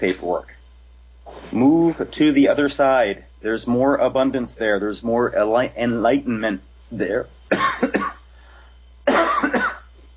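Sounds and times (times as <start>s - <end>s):
speech: 0.0s - 0.6s, 1.5s - 8.1s
person coughing: 7.5s - 8.2s, 9.1s - 10.0s.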